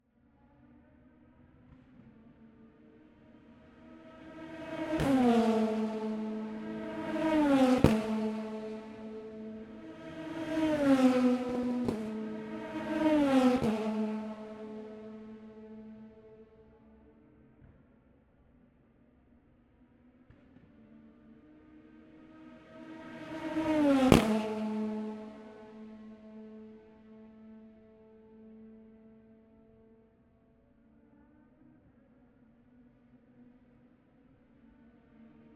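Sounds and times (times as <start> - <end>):
Pro Mazda race cars passing on a straight in qualifying: 1.0 - 17.2, 20.0 - 30.0.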